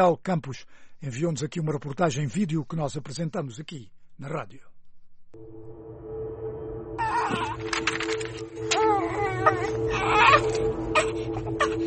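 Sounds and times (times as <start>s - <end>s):
speech: 0.0s - 4.7s, 5.3s - 5.9s, 7.3s - 11.8s
twin babies crying under the scorching sun in southern Angola: 8.7s - 11.8s.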